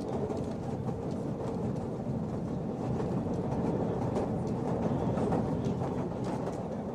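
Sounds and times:
tram rolling along its tracks: 0.0s - 6.9s.

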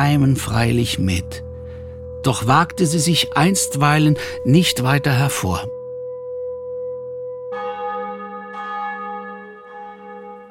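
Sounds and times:
speech: 0.0s - 1.4s, 2.2s - 5.8s
church bells ringing: 0.0s - 5.6s, 7.5s - 10.4s.

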